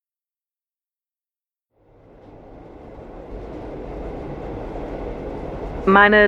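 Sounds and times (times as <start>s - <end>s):
train rolling along the rails with a low rumble: 1.7s - 6.2s
speech: 5.8s - 6.2s.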